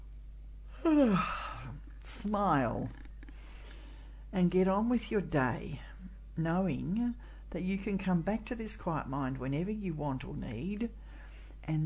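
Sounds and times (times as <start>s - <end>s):
speech: 0.8s - 1.4s, 2.1s - 3.0s, 4.3s - 11.0s, 11.6s - 11.8s
person yawning: 0.8s - 1.8s.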